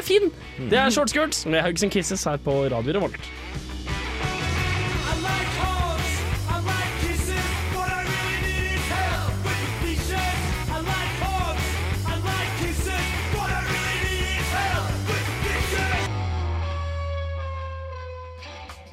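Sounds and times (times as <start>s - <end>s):
driving bass: 0.0s - 18.9s
guitars: 0.0s - 18.9s
speech: 0.1s - 3.6s
full-band rock song played on the radio: 0.4s - 18.9s
energetic, almost shouted vocals: 5.0s - 16.1s.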